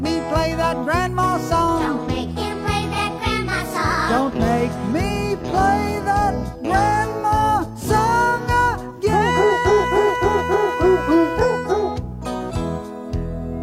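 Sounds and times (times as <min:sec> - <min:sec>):
steady musical backing: 0:00.0 - 0:13.6
dogs barking in pitched bursts forming a bouncy tune: 0:09.2 - 0:12.0.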